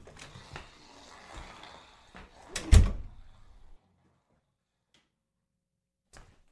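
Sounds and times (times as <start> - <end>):
door pulled open with rattling mechanical clunks: 0.0 - 3.8.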